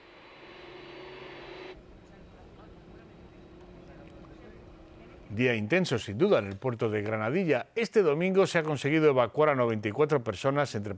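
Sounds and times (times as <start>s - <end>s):
airplane engine starting up at Tenerife Sur airport: 0.0s - 5.4s
speech: 5.3s - 10.9s.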